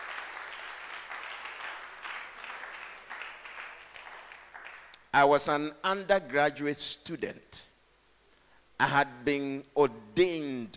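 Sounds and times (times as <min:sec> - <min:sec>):
crowd of people clapping: 0:00.0 - 0:05.1
speech: 0:05.2 - 0:07.7, 0:08.8 - 0:10.7.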